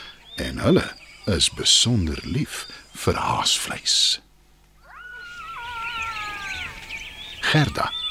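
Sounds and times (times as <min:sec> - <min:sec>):
speech: 0:00.4 - 0:04.3, 0:07.5 - 0:08.0
several jackals howling and yipping in chorus: 0:04.8 - 0:08.0.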